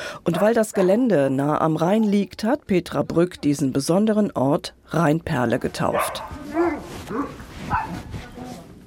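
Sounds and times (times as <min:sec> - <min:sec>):
busy outdoor noise at a dog hospice meadow: 0:00.0 - 0:08.8
speech: 0:00.2 - 0:08.0
dogs barking and yipping at a dog hospice: 0:05.9 - 0:08.1.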